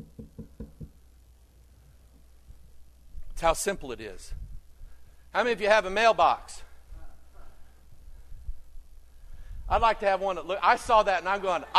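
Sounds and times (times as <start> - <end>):
knocks on a hard wooden-sounding surface: 0.0 - 1.0
speech: 3.4 - 4.4, 5.3 - 6.6, 9.7 - 11.7.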